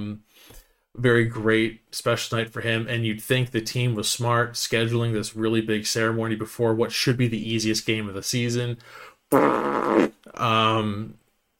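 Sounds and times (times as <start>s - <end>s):
speech: 0.0s - 11.2s
loud buzzy fart sound effects: 9.3s - 10.2s.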